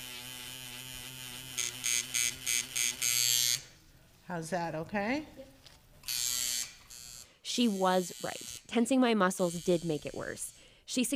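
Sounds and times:
tattoo machine buzzing against the skin of a client's leg: 0.0s - 3.7s, 6.0s - 10.7s
speech: 4.3s - 5.5s, 7.6s - 11.1s.

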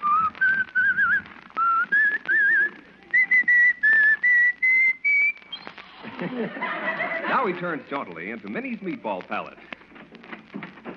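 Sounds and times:
man walking down an icy street whistling a bright bouncy melody: 0.0s - 5.7s
faint noise: 0.0s - 10.9s
laughter: 5.8s - 8.0s
speech: 7.4s - 9.7s.

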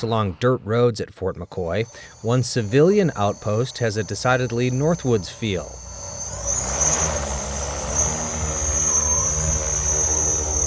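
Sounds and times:
speech: 0.0s - 5.9s
large drone propellers whirring at launch: 1.7s - 10.6s.

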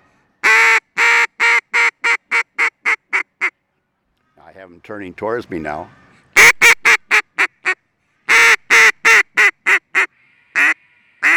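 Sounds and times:
medium hail call blown on a duck call with loud raspy quacks: 0.4s - 3.5s, 6.4s - 11.3s
speech: 4.6s - 6.0s.

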